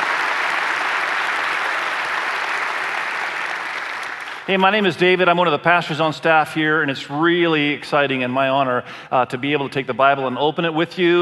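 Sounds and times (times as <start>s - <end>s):
large audience applauding: 0.0s - 4.9s
speech: 4.5s - 11.2s.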